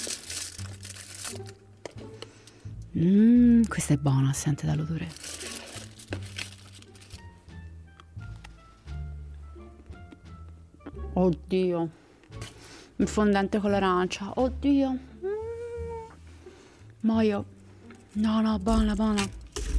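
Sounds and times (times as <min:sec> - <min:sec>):
wrapper of a dark chocolate bar with orange crinkling: 0:00.0 - 0:01.7, 0:04.6 - 0:07.4
speech: 0:01.3 - 0:02.1, 0:03.0 - 0:05.3, 0:11.2 - 0:12.0, 0:13.0 - 0:15.1, 0:17.0 - 0:17.6, 0:18.2 - 0:19.4.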